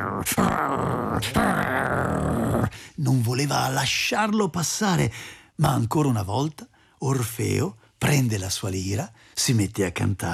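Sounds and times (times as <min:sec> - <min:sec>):
deep rumbling dog growl: 0:00.0 - 0:02.8
speech: 0:00.2 - 0:10.3.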